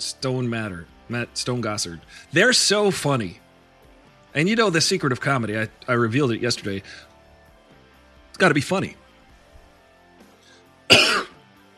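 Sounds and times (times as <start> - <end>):
speech: 0.0 - 3.4, 4.4 - 7.1, 8.4 - 9.0
rough throat clearing: 10.9 - 11.4
sharp cough with throat clearing: 10.9 - 11.5.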